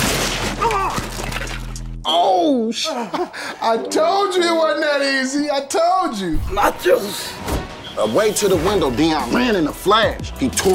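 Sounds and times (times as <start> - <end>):
snack table shattering with crashing and splintering: 0.0 - 1.8
clattering debris from the snack table: 0.0 - 1.9
speech: 2.1 - 10.7.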